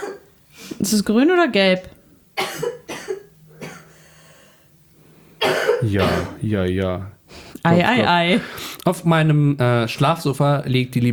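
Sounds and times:
person coughing harshly: 0:00.0 - 0:00.3, 0:02.4 - 0:03.9, 0:05.4 - 0:06.4
speech: 0:00.8 - 0:02.7, 0:05.8 - 0:11.1.

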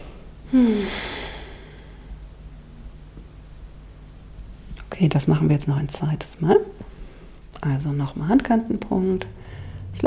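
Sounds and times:
speech: 0:00.5 - 0:01.1, 0:05.0 - 0:07.0, 0:07.6 - 0:09.4
deep breath in and out during a stress-release tapping exercise: 0:00.5 - 0:02.2, 0:09.4 - 0:10.0.

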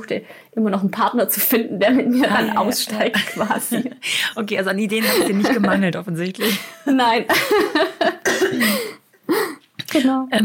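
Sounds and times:
speech: 0:00.0 - 0:10.4
laughter: 0:02.0 - 0:04.0, 0:05.0 - 0:08.3
raspy throat-clearing coughs: 0:08.2 - 0:09.6.

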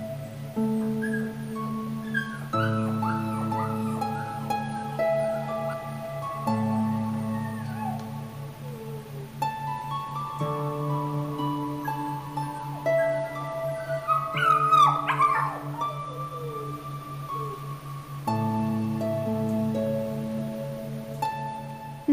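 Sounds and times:
golden retriever puppies and mother whimpering and yipping: 0:00.0 - 0:10.4, 0:11.4 - 0:18.2
sustained music with long held tones: 0:00.0 - 0:22.1.

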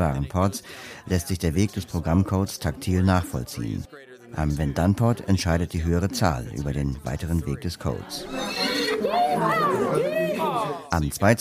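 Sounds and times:
speech: 0:00.0 - 0:11.3
laughter: 0:07.3 - 0:10.9
horse neighing: 0:08.2 - 0:10.9.

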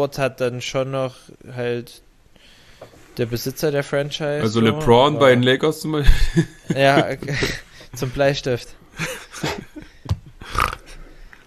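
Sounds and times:
speech: 0:00.0 - 0:02.1, 0:02.8 - 0:09.6
laughter: 0:06.0 - 0:07.6, 0:09.0 - 0:10.5
short low pig-like grunt with rough snorting bursts: 0:10.4 - 0:11.0.

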